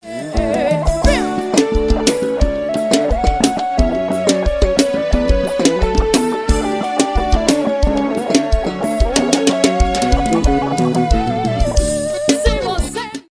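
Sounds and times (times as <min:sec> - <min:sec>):
guitar solo: 0:00.0 - 0:13.2.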